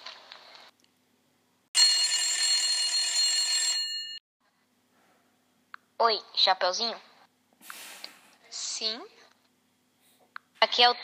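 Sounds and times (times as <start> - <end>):
telephone with bright electronic ring: 1.8 - 4.2
speech: 6.0 - 7.1, 8.8 - 9.2, 10.7 - 11.0.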